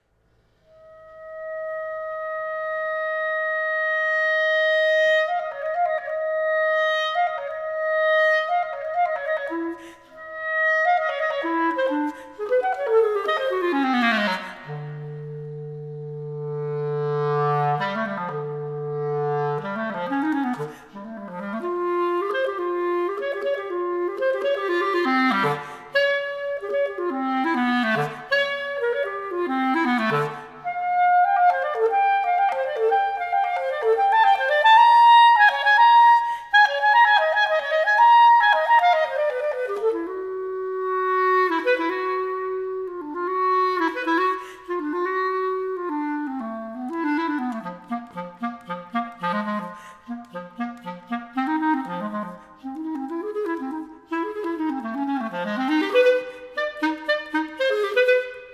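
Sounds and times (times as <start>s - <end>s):
solo B-flat clarinet: 0.0s - 58.5s.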